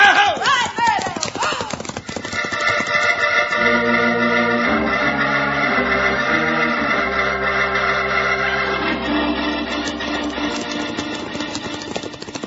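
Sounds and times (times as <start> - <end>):
horses galloping at a steady pace: 0.0 - 3.7, 9.2 - 12.4
loud sustained music: 3.3 - 11.2.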